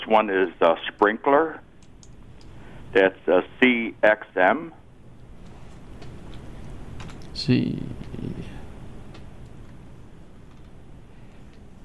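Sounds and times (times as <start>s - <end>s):
speech: 0.1s - 1.7s, 2.9s - 4.8s, 7.4s - 8.5s
typing on a computer keyboard: 7.0s - 7.3s.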